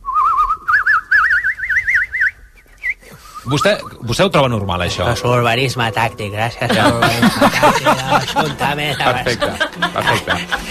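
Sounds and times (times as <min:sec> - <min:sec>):
man whistling an imitation of a bird call: 0:00.0 - 0:04.0
speech: 0:03.5 - 0:10.6
laughter: 0:06.6 - 0:10.6.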